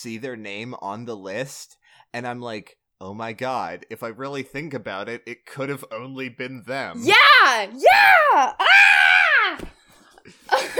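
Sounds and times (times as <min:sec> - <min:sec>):
speech: 0:00.0 - 0:08.9
loud high-pitched excited scream: 0:07.0 - 0:09.7.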